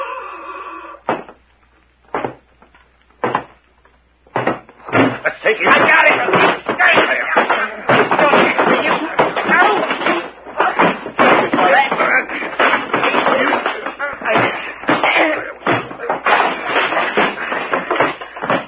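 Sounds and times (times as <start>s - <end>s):
shuffling and banging: 1.0s - 18.6s
fistfight scuffle with thuds and blows: 4.3s - 18.6s
voices shouting and grunting: 5.2s - 16.3s
speech: 5.3s - 7.7s.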